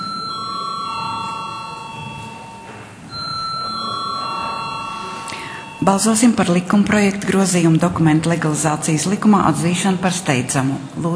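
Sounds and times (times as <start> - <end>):
electric voting bell ringing in a parliament chamber: 0.0 - 7.2
speech: 5.8 - 11.1.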